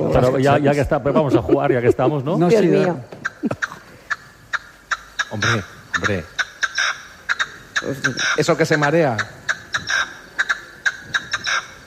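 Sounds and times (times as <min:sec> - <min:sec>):
laughter: 0:00.0 - 0:04.1
speech: 0:00.1 - 0:03.7, 0:05.3 - 0:06.4, 0:07.8 - 0:09.4
partridge calling: 0:02.1 - 0:11.8.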